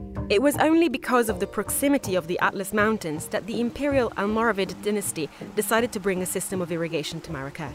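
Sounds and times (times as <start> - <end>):
speech: 0.3 - 7.7
garden fountain splashing in a shaded patio in Marrakesh: 1.5 - 7.7.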